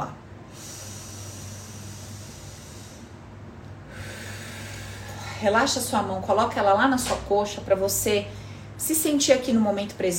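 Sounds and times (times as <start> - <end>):
deep breath in through the nose and out through the mouth: 0.4 - 5.4, 8.3 - 8.8
speech: 5.4 - 10.1.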